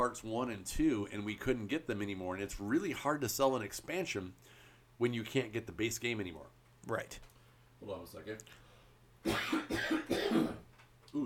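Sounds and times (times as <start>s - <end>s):
speech: 0.0s - 8.6s, 9.2s - 11.2s
harsh coughs: 9.2s - 10.7s.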